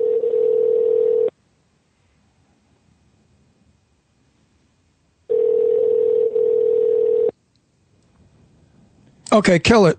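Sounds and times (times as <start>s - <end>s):
unanswered telephone ringing tone: 0.0s - 1.3s, 5.3s - 7.4s
speech: 9.3s - 9.9s.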